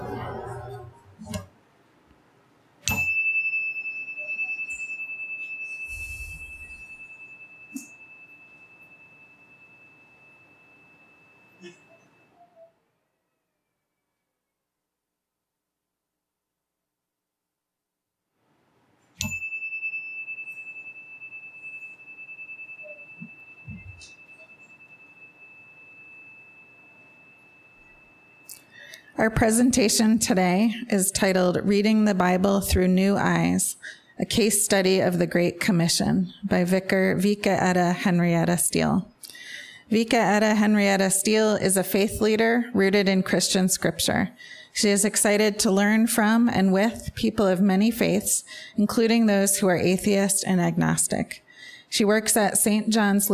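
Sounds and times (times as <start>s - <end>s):
meditation chime struck: 2.9s - 12.8s, 19.2s - 29.1s
speech: 29.2s - 39.1s, 39.9s - 53.3s.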